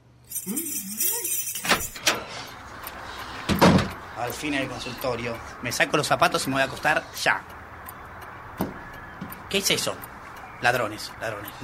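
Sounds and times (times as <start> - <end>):
keys jangling: 0.3 - 2.5
speech: 0.4 - 1.4, 4.2 - 7.6, 9.5 - 11.6
door being opened: 1.6 - 2.4, 3.5 - 3.9.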